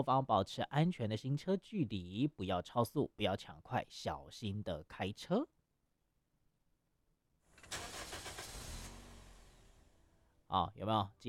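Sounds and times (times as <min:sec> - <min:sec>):
speech: 0:00.0 - 0:05.6, 0:10.5 - 0:11.2
car engine cranking, catching and idling: 0:07.5 - 0:10.4.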